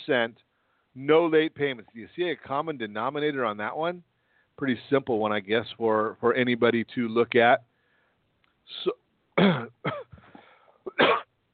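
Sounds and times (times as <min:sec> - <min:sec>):
speech: 0:00.0 - 0:07.7, 0:08.7 - 0:10.0
person coughing: 0:09.4 - 0:11.3.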